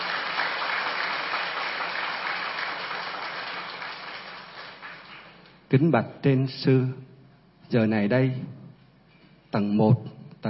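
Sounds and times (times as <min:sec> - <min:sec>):
large crowd of young people applauding at a pagoda: 0:00.0 - 0:05.6
speech: 0:05.7 - 0:07.1, 0:07.7 - 0:08.6, 0:09.5 - 0:10.4.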